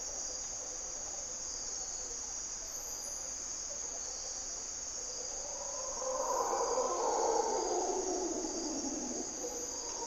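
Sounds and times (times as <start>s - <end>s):
mantled howler monkeys calling at morning twilight in primary hardwood forest, Costa Rica: 5.8s - 10.0s.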